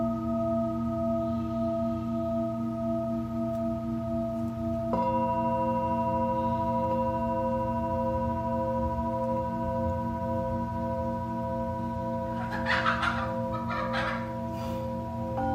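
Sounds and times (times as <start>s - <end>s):
singing bowl ringing: 0.0s - 15.5s
brief higher chirping or clucking sounds: 12.2s - 15.5s.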